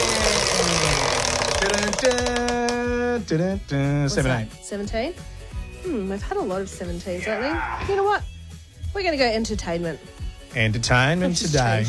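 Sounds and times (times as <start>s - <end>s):
prize wheel spun to pick a category in a quiz game: 0.0s - 3.0s
speech: 2.0s - 2.4s, 3.2s - 8.3s, 8.9s - 11.8s.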